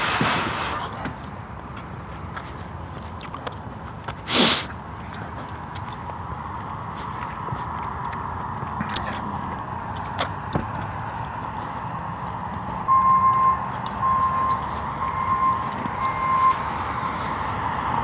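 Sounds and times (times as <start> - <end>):
constant low rumble of outdoor traffic: 0.0 - 18.0
city truck reversing alarm beeping: 12.8 - 18.0.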